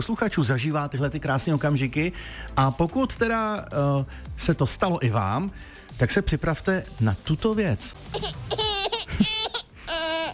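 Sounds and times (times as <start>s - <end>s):
speech: 0.0s - 9.3s
small child laughing: 8.1s - 10.3s.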